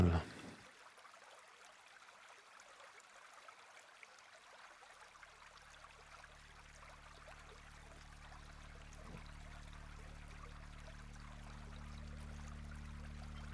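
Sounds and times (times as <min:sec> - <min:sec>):
babbling stream: 0:00.0 - 0:13.5
low droning hum: 0:07.8 - 0:13.5.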